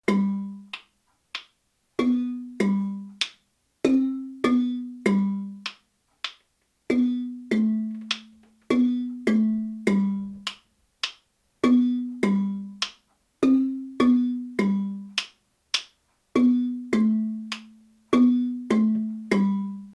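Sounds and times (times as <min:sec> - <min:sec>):
baritone main marimba: 0:00.0 - 0:00.7, 0:02.0 - 0:03.2, 0:03.8 - 0:05.7, 0:06.9 - 0:10.5, 0:11.6 - 0:15.2, 0:16.4 - 0:19.9.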